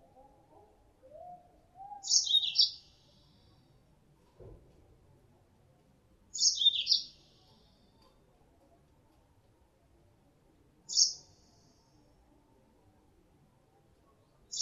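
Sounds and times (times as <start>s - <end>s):
female Mozambique canary calling as lure sound: 1.1s - 3.5s, 6.3s - 7.6s, 10.9s - 11.6s, 14.5s - 14.6s.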